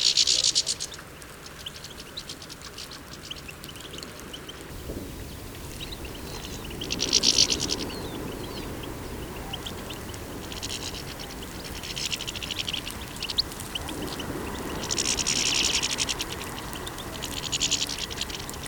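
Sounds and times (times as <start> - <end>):
European goldfinch Carduelis carduelis calls with bright tinkling twitters: 0.1 - 18.6
low background rumble: 4.7 - 18.6.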